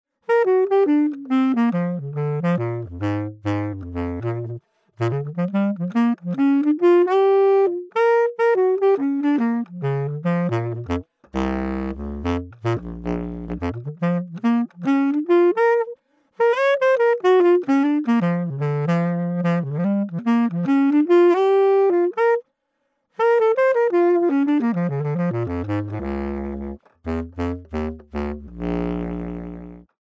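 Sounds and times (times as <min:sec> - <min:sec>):
bass clarinet: 0:00.3 - 0:22.4, 0:23.2 - 0:30.0.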